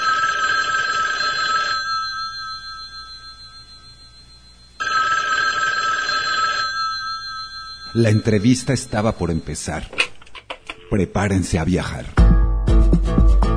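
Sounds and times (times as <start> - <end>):
telephone bell ringing with an electric jangle: 0.0 - 9.8
speech: 7.9 - 10.1, 10.9 - 12.3, 12.9 - 13.4.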